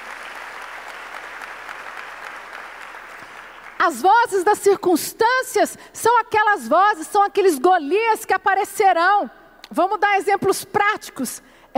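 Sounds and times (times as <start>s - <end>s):
crowd applauding: 0.0s - 3.8s
speech: 3.8s - 11.7s.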